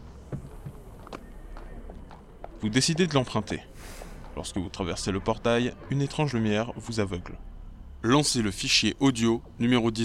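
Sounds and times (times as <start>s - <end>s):
horse hooves galloping: 0.0s - 3.2s
speech: 2.6s - 10.0s.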